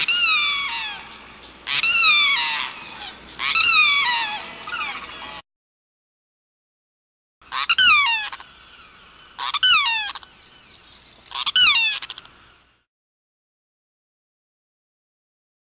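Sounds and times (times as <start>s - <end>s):
limpkin giving loud wailing calls: 0.0s - 5.4s, 7.5s - 12.4s.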